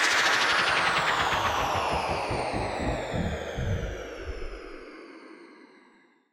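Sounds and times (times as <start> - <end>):
modulated white noise sweeping down, house music effect: 0.2 - 4.8.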